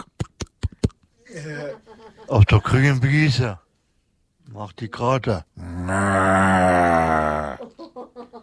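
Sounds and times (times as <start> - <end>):
speech: 1.4 - 3.6, 4.5 - 7.4
cow grazing on a green meadow mooing: 5.6 - 7.6.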